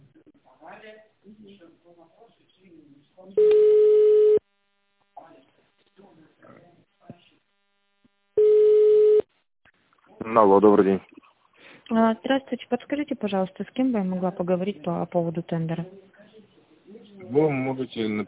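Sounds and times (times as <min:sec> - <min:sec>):
speech: 0:00.9 - 0:04.1, 0:10.3 - 0:11.1, 0:11.9 - 0:16.1, 0:17.3 - 0:18.2
telephone ringback tone while call is transferred to an operator: 0:03.4 - 0:04.4, 0:08.4 - 0:09.3.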